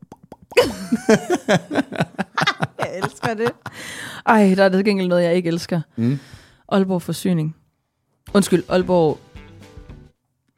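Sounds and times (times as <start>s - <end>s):
mouth plops imitating a goldfish: 0.0s - 0.8s
speech: 0.6s - 2.2s, 2.9s - 7.6s, 8.2s - 9.2s
laughter: 0.6s - 3.8s.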